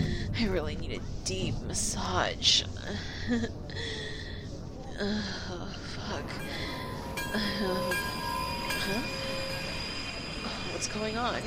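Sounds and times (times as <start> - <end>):
train rumbling as it slows to a halt: 0.0 - 3.0, 4.6 - 11.4
speech: 0.4 - 4.1, 5.0 - 9.2, 10.4 - 11.4
drawn-out metallic squeals and whining tones from train wheels and brakes: 6.2 - 11.4.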